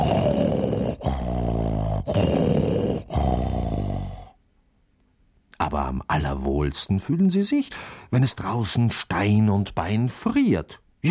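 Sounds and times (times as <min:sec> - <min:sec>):
cats snoring while sleeping between huge oak barrels of malt beer: 0:00.0 - 0:04.4
speech: 0:05.7 - 0:11.0.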